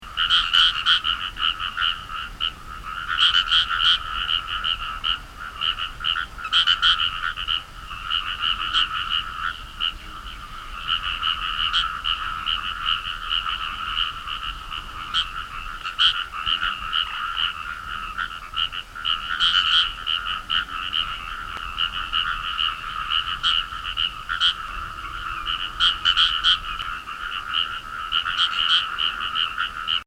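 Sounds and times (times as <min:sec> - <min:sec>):
Fejervarya Kawamurai calling: 0:00.0 - 0:30.0.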